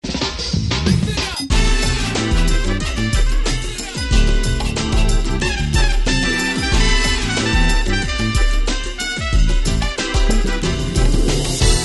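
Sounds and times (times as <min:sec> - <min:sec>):
acid jazz music: 0:00.0 - 0:11.8.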